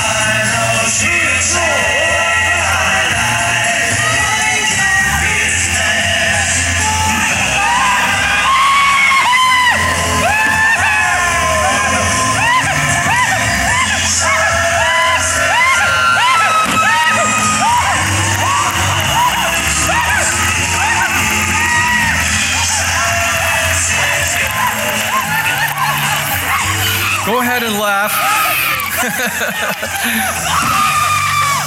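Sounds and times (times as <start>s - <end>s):
laughter: 0.1s - 31.6s
man screaming while riding a Sky Coaster amusement ride: 7.1s - 31.6s.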